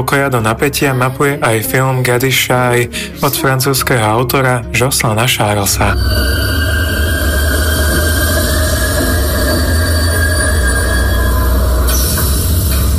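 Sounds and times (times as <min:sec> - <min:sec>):
speech: 0:00.0 - 0:06.7
thin metallic train wheel squeals: 0:05.7 - 0:12.9
train rumbling along rails: 0:05.8 - 0:12.9.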